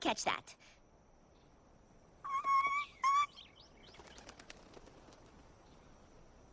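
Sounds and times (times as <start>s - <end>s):
loud sustained whistling bird calls: 2.3s - 4.3s
soft quick bird chirps: 2.4s - 5.8s
light wing fluttering: 2.4s - 6.0s.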